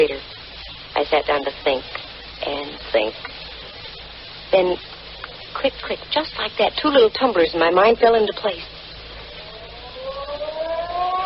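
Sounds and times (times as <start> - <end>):
low rumble: 0.0 - 11.2
speech: 1.0 - 3.4, 4.5 - 5.0, 5.6 - 8.8
ferry building siren in downtown San Francisco sounding the hour: 9.2 - 11.2.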